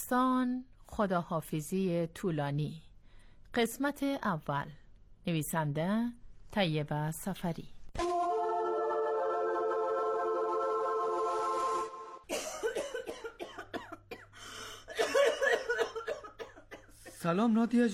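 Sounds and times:
speech: 0.1s - 2.9s, 3.5s - 7.8s, 17.2s - 17.9s
steady held musical tone: 8.0s - 12.3s
person coughing: 12.3s - 17.1s.

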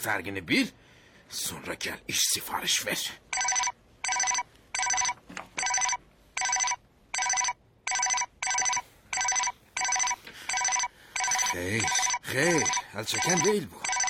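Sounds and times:
speech: 0.0s - 3.6s, 11.6s - 14.0s
telephone bell ringing: 3.4s - 14.0s.

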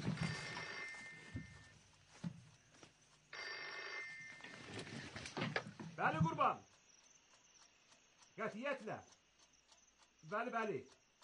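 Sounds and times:
telephone ringing: 0.0s - 1.8s, 3.3s - 5.1s
speech: 6.0s - 6.7s, 8.4s - 9.2s, 10.2s - 11.0s.

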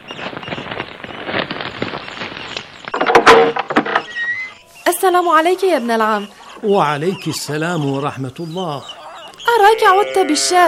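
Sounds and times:
scraping and rattling: 0.4s - 4.6s
door hinges squeaking and creaking: 2.9s - 4.6s
speech: 5.0s - 8.9s, 9.5s - 10.6s.

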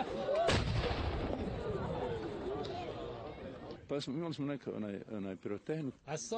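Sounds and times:
outdoor crowd noise: 0.0s - 6.3s
cannon blast marking the end of the Ramadan fast: 0.5s - 2.2s
speech: 3.9s - 6.3s.

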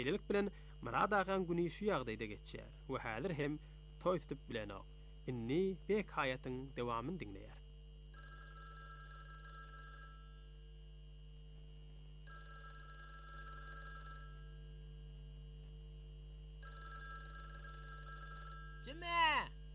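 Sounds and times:
speech: 0.0s - 7.6s
telephone ringing: 8.1s - 10.5s, 12.2s - 14.8s, 16.6s - 19.4s.

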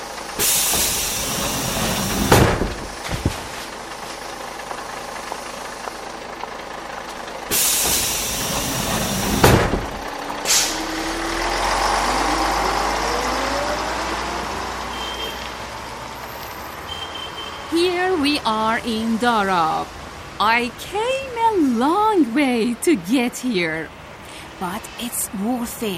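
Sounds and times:
bus engine idling with a low rumble: 0.0s - 25.9s
bus air brakes releasing hisses: 0.4s - 3.0s, 7.5s - 11.0s
speech: 18.9s - 24.0s, 24.6s - 25.9s.

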